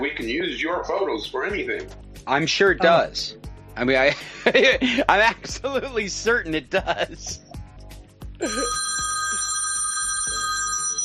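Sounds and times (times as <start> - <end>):
speech: 0.0 - 7.5, 8.4 - 8.9
laughter: 4.0 - 5.9, 6.6 - 7.4, 8.4 - 8.8
telephone ringing with electronic bell tone: 8.4 - 11.0.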